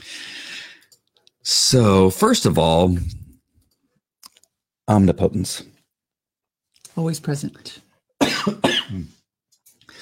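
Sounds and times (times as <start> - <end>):
speech: 1.7 - 3.2, 4.9 - 5.8, 7.0 - 9.2
person coughing from a sesame seed stuck in the throat: 8.2 - 9.2.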